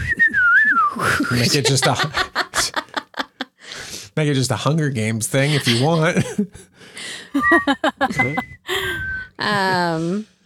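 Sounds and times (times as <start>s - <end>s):
person whistling a wavering call: 0.0s - 1.5s, 7.3s - 9.7s
people laughing: 1.0s - 3.6s, 5.4s - 8.8s
speech: 1.3s - 2.3s, 4.2s - 6.7s, 7.3s - 8.6s, 9.4s - 10.3s.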